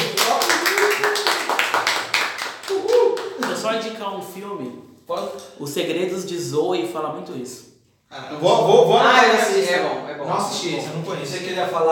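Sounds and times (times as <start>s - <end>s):
applause from a few people: 0.0s - 3.7s
speech: 3.7s - 11.9s.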